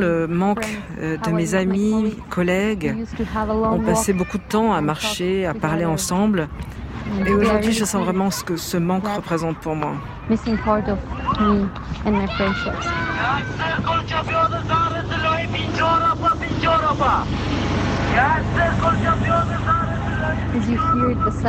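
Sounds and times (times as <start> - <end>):
speech: 0.0 - 17.6, 18.2 - 21.4
several people talking and calling out on a busy street: 0.0 - 21.4
motorcycle engine droning: 12.5 - 21.4.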